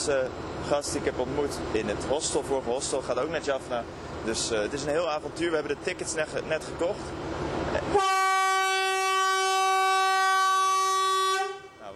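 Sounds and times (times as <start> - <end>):
speech: 0.0 - 8.1
rumbling train station noise in Sri Lanka: 0.0 - 9.8
loud train horn blast in Sri Lanka: 7.9 - 11.9.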